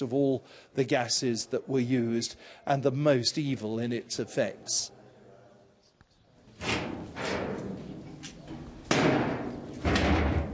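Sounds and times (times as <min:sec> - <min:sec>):
speech: 0:00.0 - 0:05.0, 0:06.6 - 0:07.4
heavy basement door being shut with thuds and clanks: 0:06.6 - 0:10.5.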